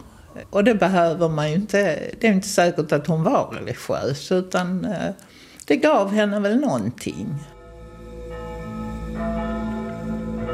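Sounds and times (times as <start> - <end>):
speech: 0.4 - 7.6
church bells ringing: 7.2 - 10.5.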